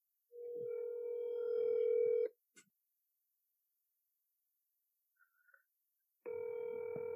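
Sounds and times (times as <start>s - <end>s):
ringback tone of an outgoing phone call: 0.4s - 2.3s, 6.3s - 7.1s.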